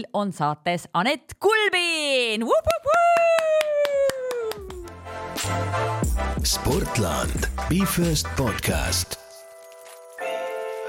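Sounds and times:
speech: 0.0s - 3.4s, 5.4s - 9.2s
rhythmic hand clapping: 2.6s - 8.4s
denser applause: 2.7s - 5.1s.

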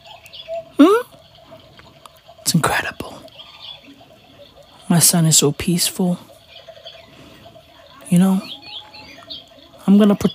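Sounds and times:
bird giving a bright rising chirp: 0.0s - 1.8s, 2.4s - 10.3s
faint thin bird tweets: 0.0s - 10.3s
speech: 4.9s - 6.4s, 8.2s - 8.6s, 10.0s - 10.3s.

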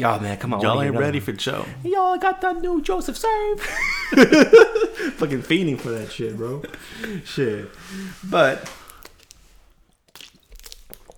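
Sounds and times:
speech: 0.0s - 8.8s
laughter: 3.3s - 8.7s
person drinking water with wet gulps and swallows: 6.0s - 11.1s
soft squishy mouth noises: 7.7s - 11.1s.

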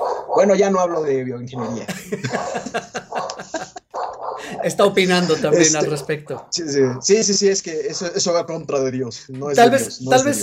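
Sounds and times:
dog barking: 0.0s - 4.6s, 5.8s - 7.1s
speech: 0.4s - 3.8s, 4.4s - 10.4s
laughter: 1.6s - 4.7s.

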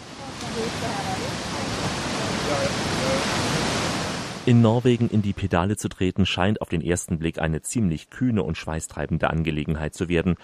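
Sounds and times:
powerful very wide waterfall roaring: 0.0s - 5.4s
speech: 4.5s - 10.4s.

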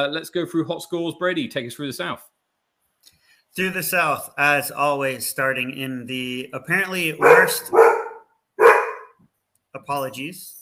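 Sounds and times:
speech: 0.0s - 2.3s, 3.0s - 8.0s, 9.8s - 10.6s
dog barking: 7.2s - 9.2s.

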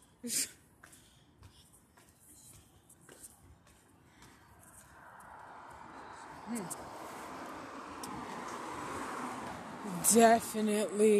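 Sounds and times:
speech: 0.2s - 0.6s, 6.5s - 7.0s, 10.0s - 11.1s
cars driving past on a road: 3.6s - 11.1s.

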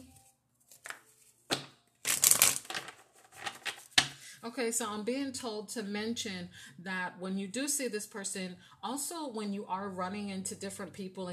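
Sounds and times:
deck of love cards being shuffled for a reading: 0.0s - 4.1s
speech: 4.4s - 11.3s.

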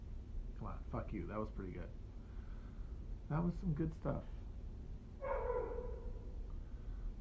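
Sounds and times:
low rumble: 0.0s - 7.1s
speech: 0.6s - 2.0s, 3.3s - 4.4s
dog barking: 5.2s - 6.3s.

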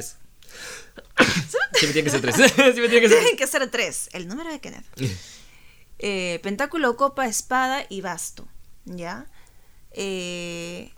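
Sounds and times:
speech: 0.0s - 5.4s, 6.0s - 10.9s
laughter: 1.2s - 3.4s
single loud sneeze: 5.0s - 5.4s.

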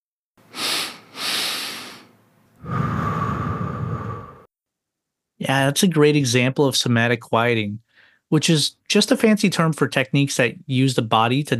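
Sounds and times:
person doing long steady breathy exhale: 0.5s - 4.5s
person doing physiological sigh with sniffing inhales through the nose: 0.5s - 4.5s
speech: 5.4s - 11.5s.

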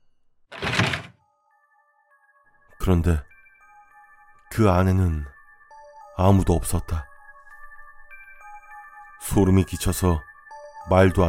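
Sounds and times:
scraping rumble of a wooden vaulting box being shifted: 0.5s - 1.2s
hollow wooden thunk of a wooden vaulting box being lifted: 0.6s - 1.1s
speech: 2.8s - 3.3s, 4.5s - 5.4s, 6.2s - 7.1s, 9.3s - 10.3s, 10.9s - 11.2s.

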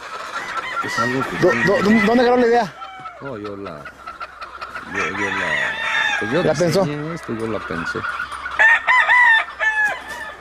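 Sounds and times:
rooster crowing: 0.6s - 3.2s, 4.9s - 6.8s, 8.6s - 10.3s
speech: 0.8s - 4.0s, 4.9s - 8.2s.

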